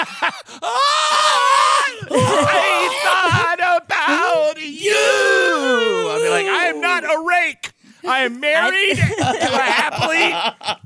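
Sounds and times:
laughter: 0:00.0 - 0:00.7, 0:01.9 - 0:03.8, 0:08.6 - 0:10.8
person mimicking screaming fans with yelps and a high-pitched shriek: 0:00.6 - 0:07.2
speech: 0:08.1 - 0:10.8.

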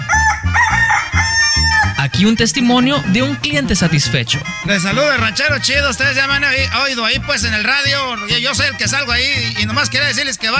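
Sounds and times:
loud rooster crowing: 0:00.0 - 0:02.1
speech: 0:02.2 - 0:10.5.

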